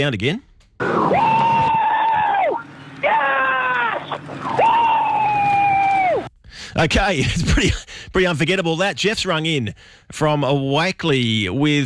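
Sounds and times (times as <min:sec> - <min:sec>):
speech: 0:00.0 - 0:01.4, 0:06.8 - 0:11.8
Ford Mustang Supercar engine wailing while racing: 0:00.8 - 0:06.3.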